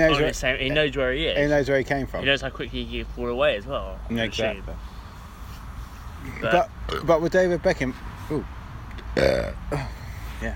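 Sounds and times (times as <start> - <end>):
speech: 0.0 - 4.9, 6.2 - 8.6, 9.2 - 10.5
person burping: 6.9 - 7.1, 9.1 - 10.0.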